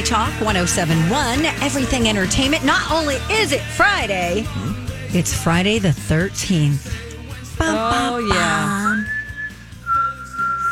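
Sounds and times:
speech: 0.1 - 7.0, 7.6 - 9.2
person whistling an eerie scary tune: 8.6 - 10.7.

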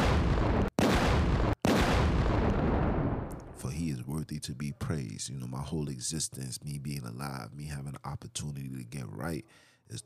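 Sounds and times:
gunshot salute gunfire bursts: 0.0 - 3.3
speech: 3.7 - 10.0.

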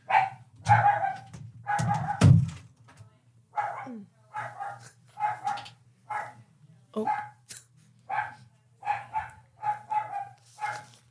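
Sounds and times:
dog barking as visitors arrive at the house: 0.0 - 2.3, 3.6 - 6.4, 7.0 - 7.4, 8.1 - 11.0.

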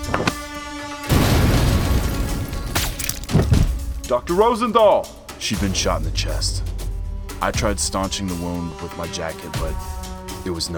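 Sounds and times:
grenade explosion: 1.1 - 3.8
speech: 4.1 - 6.7, 7.4 - 10.7.

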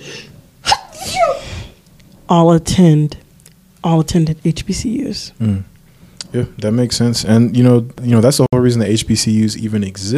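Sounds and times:
sneeze: 0.6 - 1.7
speech: 2.3 - 3.2, 3.8 - 5.7, 6.3 - 10.1.

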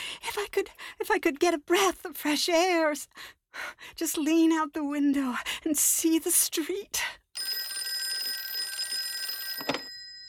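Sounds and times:
speech: 0.5 - 7.2
old telephone bell ringing in a shrill trill: 7.4 - 10.2.

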